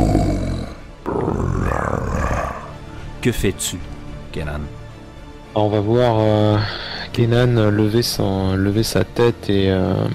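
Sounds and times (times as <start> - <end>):
roar of a colossal creature in a fantasy role-playing game: 0.0 - 2.9
speech: 3.2 - 4.8, 5.5 - 10.1.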